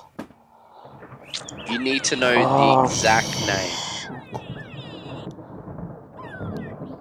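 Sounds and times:
bird calling in warbling pitch-sliding phrases: 0.8 - 5.3, 6.1 - 6.9
speech: 1.7 - 3.8.

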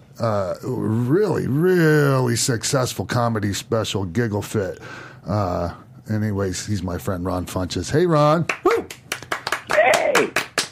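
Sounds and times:
speech: 0.2 - 9.0
sharp hand claps: 8.4 - 10.7
person calling out: 9.7 - 10.3.

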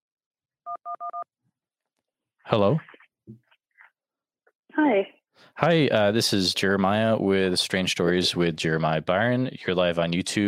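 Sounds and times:
two-tone telephone keypad beeps: 0.7 - 1.2
speech: 0.8 - 1.4, 2.4 - 3.4, 4.8 - 10.4.

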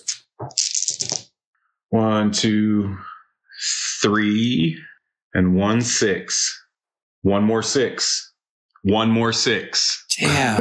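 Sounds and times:
dice rattling: 0.0 - 1.2
speech: 1.9 - 3.1, 4.0 - 6.6, 7.2 - 8.2, 8.8 - 10.6
person making a drawn-out wordless utterance: 10.1 - 10.6.

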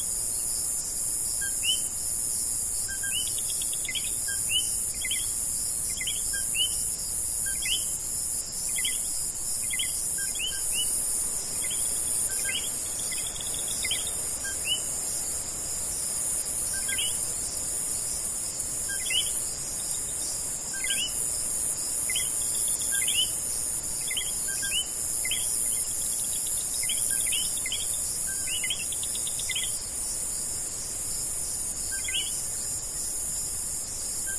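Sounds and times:
dense high drone of buzzing insects in a tropical rainforest at night: 0.0 - 34.3
jungle frogs chirping in a tropical rainforest at night: 2.9 - 8.0, 8.6 - 15.0, 16.8 - 17.3, 18.9 - 21.3, 22.0 - 23.4, 24.0 - 29.8, 31.9 - 32.6.

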